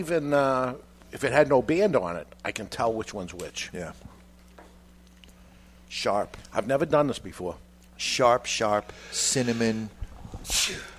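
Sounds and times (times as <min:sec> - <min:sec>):
speech: 0:00.0 - 0:04.1, 0:05.9 - 0:10.9
sneeze: 0:10.5 - 0:10.9.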